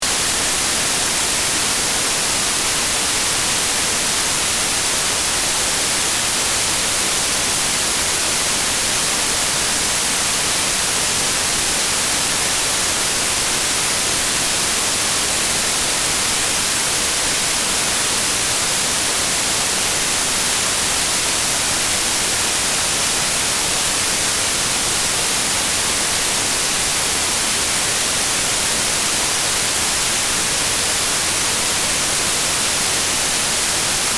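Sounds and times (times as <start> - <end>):
white noise: 0.0 - 34.1.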